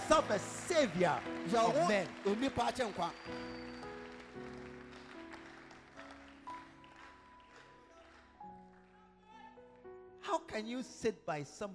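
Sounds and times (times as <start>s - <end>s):
audience clapping: 0.0s - 9.0s
speech: 0.1s - 3.6s, 4.4s - 4.6s, 10.3s - 11.7s.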